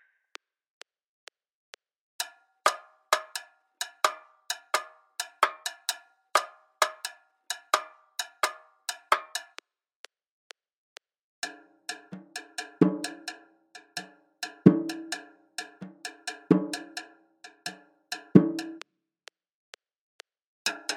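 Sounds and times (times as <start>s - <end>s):
Latin American cascara rhythm at 130 bpm: 2.2s - 9.6s, 11.5s - 18.9s, 20.7s - 20.9s.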